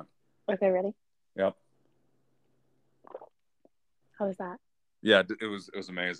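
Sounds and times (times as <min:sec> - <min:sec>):
speech: 0:00.0 - 0:01.6, 0:04.2 - 0:06.1
person swallowing: 0:03.0 - 0:03.4.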